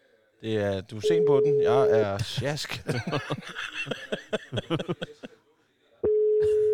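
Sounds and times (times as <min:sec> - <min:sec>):
speech: 0:00.4 - 0:05.4
telephone ringing tone for an outgoing call: 0:01.0 - 0:02.1, 0:06.0 - 0:06.7
people chuckling and laughing: 0:02.2 - 0:05.5.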